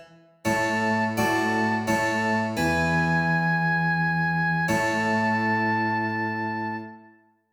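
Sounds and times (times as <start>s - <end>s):
continuo accompaniment: 0.5s - 7.0s.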